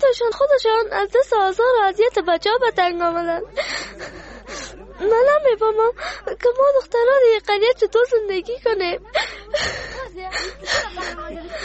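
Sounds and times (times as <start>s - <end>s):
speech: 0.1s - 11.6s
laughter: 3.4s - 6.4s, 8.5s - 11.6s
girl whimpering and crying: 9.2s - 11.6s.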